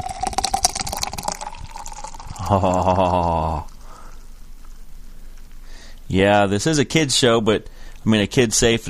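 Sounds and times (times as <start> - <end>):
Guinness Draught beer pouring into a glass: 0.0 - 3.7
speech: 2.5 - 3.7, 6.1 - 8.8.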